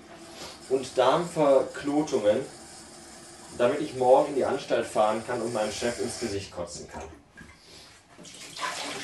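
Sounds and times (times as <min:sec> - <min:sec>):
speech: 0:00.7 - 0:02.6, 0:03.5 - 0:07.2
tap water running into a pot: 0:08.2 - 0:09.0.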